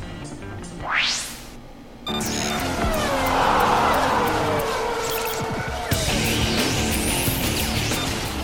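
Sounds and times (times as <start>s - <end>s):
race track ambience: 0.0s - 8.4s
single Formula 1 race car engine revving during qualifying: 2.3s - 8.4s.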